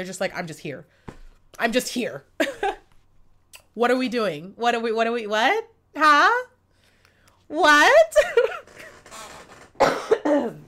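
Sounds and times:
speech: 0.0 - 2.6, 3.8 - 6.5, 7.5 - 8.5
person under the weather coughing: 2.4 - 2.9, 9.8 - 10.6.

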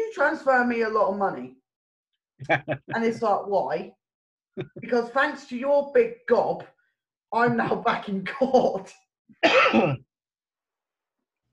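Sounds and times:
speech: 0.2 - 1.6, 2.4 - 4.0, 4.6 - 6.7, 7.3 - 10.1
rasping cough: 9.4 - 10.0.

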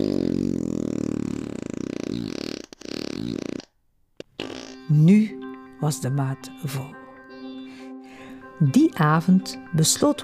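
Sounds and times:
long loud fart: 0.0 - 4.9
speech: 5.9 - 7.0, 8.6 - 10.2.

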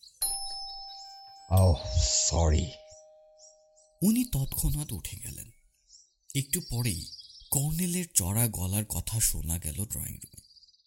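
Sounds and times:
electronic doorbell chime: 0.2 - 4.0
speech: 1.8 - 2.8, 4.0 - 5.6, 6.3 - 10.4.

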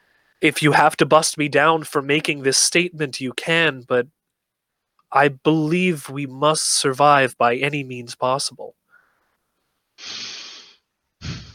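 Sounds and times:
speech: 0.4 - 4.2, 5.1 - 8.8, 10.0 - 10.4
deep breath in, held, then let out: 8.9 - 9.4, 10.0 - 11.5.

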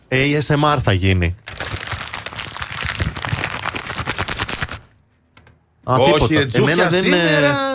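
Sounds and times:
speech: 0.1 - 1.4, 5.9 - 7.7
damp paper being crumpled for ASMR: 1.5 - 4.9.

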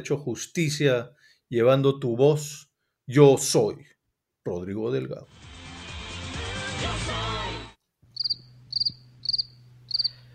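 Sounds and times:
speech: 0.0 - 5.5
crickets chirping: 8.2 - 10.2.

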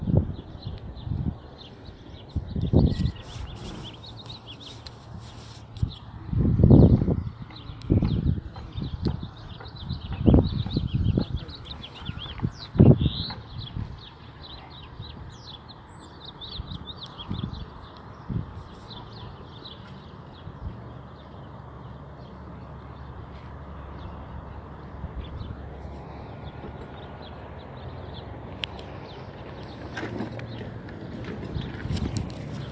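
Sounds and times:
chorus of birds chirping outdoors: 0.0 - 32.7
horses eating with low crunching and thudding: 3.1 - 5.7, 28.9 - 32.7.

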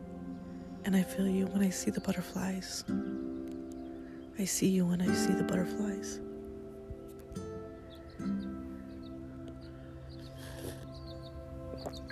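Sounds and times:
birds chirping beneath overhanging trees: 0.0 - 12.1
steady low outdoor hum: 0.0 - 12.1
speech: 0.8 - 3.2, 4.4 - 6.2.

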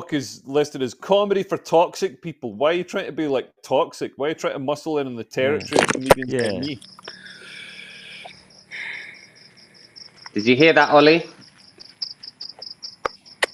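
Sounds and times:
speech: 0.1 - 7.2, 10.4 - 11.3
crickets chirping: 5.5 - 13.5.

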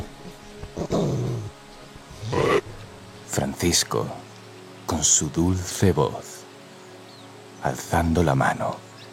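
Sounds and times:
huge ferocious wolf growling and snarling as it lunges: 0.8 - 2.8
speech: 3.4 - 4.3, 5.0 - 6.3, 7.6 - 8.9.

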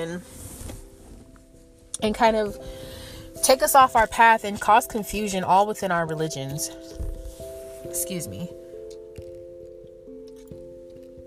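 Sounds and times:
speech: 0.0 - 0.4, 2.0 - 7.2, 7.9 - 8.6
sipping and swallowing water: 9.2 - 11.2.

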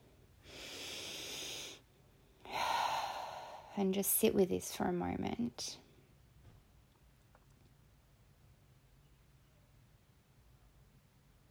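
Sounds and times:
deep breath during a guided meditation: 0.4 - 3.8
speech: 3.8 - 5.9.

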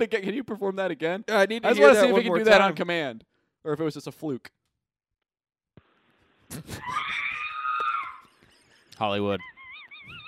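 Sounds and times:
speech: 0.0 - 4.6, 6.5 - 7.3, 9.0 - 9.5
cameraman's voice imitating a droid's electronic scream: 6.7 - 8.3.

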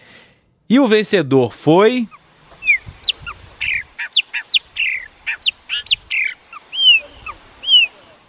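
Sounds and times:
speech: 0.7 - 2.2
chopi blackbird singing: 2.0 - 8.2.

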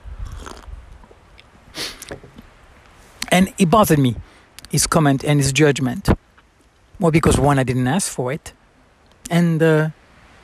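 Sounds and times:
soft mouth and swallowing noises: 0.0 - 2.5
slurping sip of warm tea: 0.2 - 2.4
speech: 3.4 - 6.2, 7.0 - 8.6, 9.3 - 10.0.

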